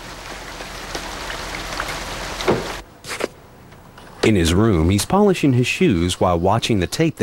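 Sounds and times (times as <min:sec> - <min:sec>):
heavy rain pouring outside a hotel: 0:00.0 - 0:02.8
water drips and splashes: 0:00.0 - 0:02.8
speech: 0:04.3 - 0:07.2.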